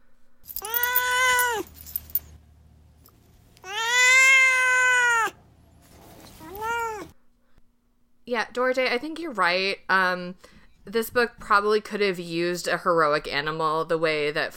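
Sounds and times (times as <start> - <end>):
cat meowing: 0.6 - 1.7, 3.6 - 5.4, 6.4 - 7.1
speech: 8.3 - 14.5.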